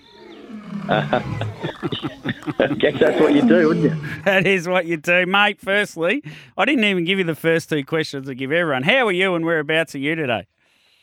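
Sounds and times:
lion roaring: 0.0 - 2.0, 2.7 - 4.4
laughter: 0.6 - 4.7
speech: 0.9 - 10.6.

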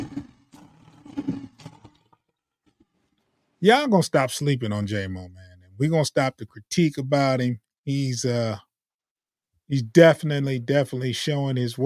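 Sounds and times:
lion roaring: 0.0 - 2.2
speech: 3.6 - 8.7, 9.7 - 11.8.

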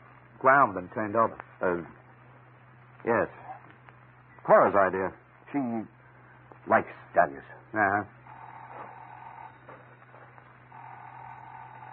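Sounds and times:
hissy background: 0.0 - 11.9
speech: 0.4 - 2.0, 3.0 - 3.4, 4.5 - 6.0, 6.6 - 8.2
telephone ringing in buzzing bursts: 8.2 - 11.9.

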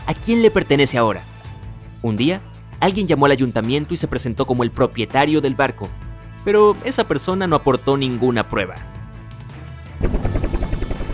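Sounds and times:
speech: 0.1 - 1.3, 2.0 - 9.0
helicopter starting up and flying: 10.0 - 11.1.

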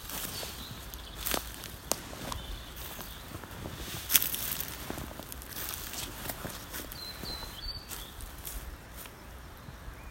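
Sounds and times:
footsteps crunching over dry leaves in a wood: 0.0 - 9.2
sharper snaps: 0.1 - 3.1, 4.1 - 6.9.

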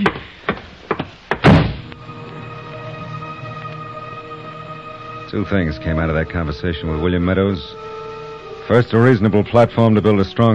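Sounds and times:
knocking thuds: 0.0 - 1.9
heavy door slamming shut as someone leaves: 1.4 - 1.9
speech: 5.3 - 8.0, 8.7 - 10.5.

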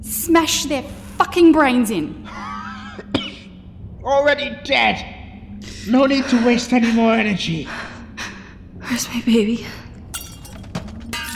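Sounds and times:
speech: 0.0 - 2.4, 4.1 - 5.1, 5.8 - 7.9, 8.9 - 9.8
glass window shattering: 10.2 - 11.3
tinkling glass debris: 10.2 - 11.3.

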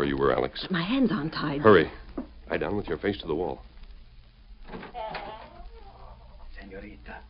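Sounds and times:
speech: 0.0 - 3.7, 6.8 - 7.2
faint hum: 0.0 - 7.2
outside door swinging shut with a scraping creak: 4.6 - 5.6.

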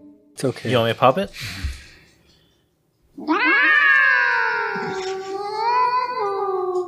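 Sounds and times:
speech: 0.4 - 1.8
cat meowing: 3.2 - 6.8.

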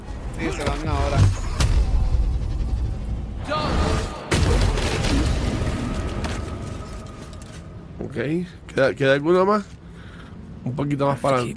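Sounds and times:
speech: 0.4 - 1.4, 8.2 - 9.8, 10.6 - 11.5
video game potion explosions: 1.0 - 7.2.

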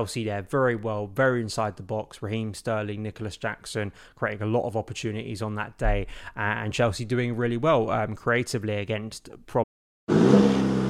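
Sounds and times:
speech: 0.0 - 9.6
pickup truck turbocharged engine revving: 10.1 - 10.8.

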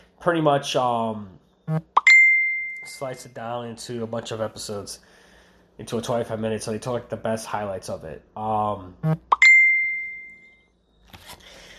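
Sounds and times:
speech: 0.2 - 2.0, 2.8 - 5.2, 5.8 - 9.4
phone message notification chime: 9.3 - 10.6.

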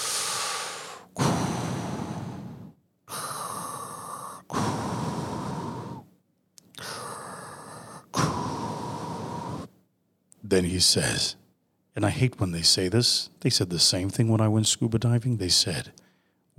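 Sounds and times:
heavy breathing through a snorkel tube held in the mouth: 0.0 - 6.1, 6.8 - 9.8
speech: 10.5 - 11.4, 12.0 - 16.0.

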